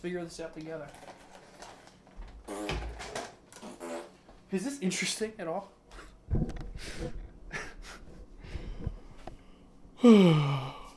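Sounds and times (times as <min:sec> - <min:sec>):
speech: 0:00.0 - 0:01.2, 0:02.5 - 0:02.9, 0:04.5 - 0:07.2, 0:10.0 - 0:10.8
soft breathing: 0:05.9 - 0:10.9
person yawning loudly: 0:10.0 - 0:10.9.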